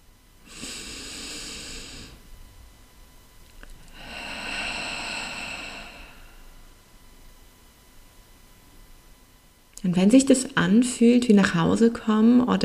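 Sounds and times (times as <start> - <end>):
slow deep breath in and out: 0.4 - 2.3, 3.8 - 6.8
speech: 9.8 - 12.6.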